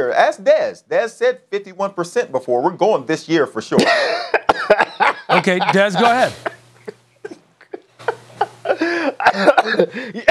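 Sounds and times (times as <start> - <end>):
speech: 0.0 - 6.5, 9.3 - 10.2
laughter: 3.8 - 10.2
man coughing: 5.4 - 6.6, 9.3 - 10.2.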